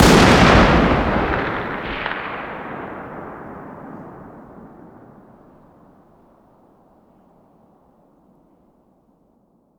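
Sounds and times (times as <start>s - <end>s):
distant .338 Lapua Magnum rifle shot outdoors: 0.0s - 5.8s.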